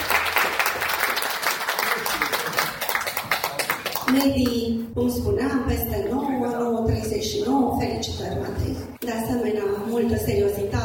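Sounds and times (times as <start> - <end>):
crowd applauding: 0.0 - 4.3
speech: 4.1 - 10.8.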